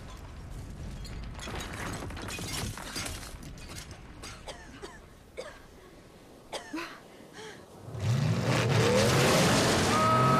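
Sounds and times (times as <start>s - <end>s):
debris clattering and crunching: 0.0s - 4.6s
blue Ford Bronco pickup truck engine roaring as it drives out of bushes and stops: 7.9s - 10.3s.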